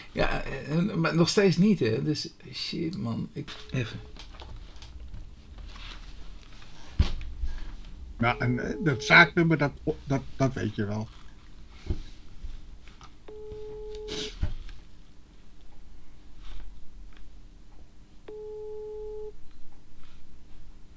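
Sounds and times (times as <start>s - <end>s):
speech: 0.2s - 4.2s, 8.2s - 11.2s
unanswered telephone ringback tones: 3.4s - 10.8s.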